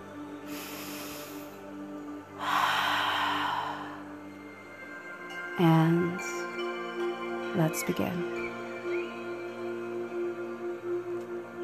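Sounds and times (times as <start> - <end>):
faint steady tonal hum: 0.0 - 11.6
single deep breath during a guided meditation: 0.4 - 1.6, 2.4 - 4.3
speech: 5.6 - 6.4, 7.6 - 8.4.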